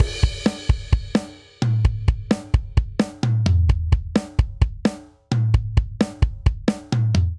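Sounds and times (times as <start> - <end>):
driving rock verse drum beat at 130 bpm: 0.0 - 7.2.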